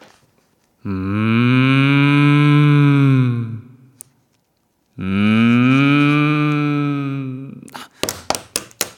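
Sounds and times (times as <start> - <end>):
speech: 0.8 - 1.2
person imitating a cow moo: 0.8 - 4.0, 5.0 - 7.7.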